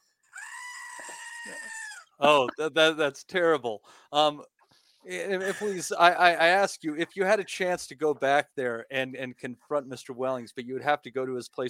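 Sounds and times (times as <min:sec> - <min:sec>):
goat missing one ear screaming at a ranch: 0:00.4 - 0:02.1
speech: 0:01.0 - 0:11.6
laughter: 0:02.2 - 0:02.9, 0:05.1 - 0:08.4.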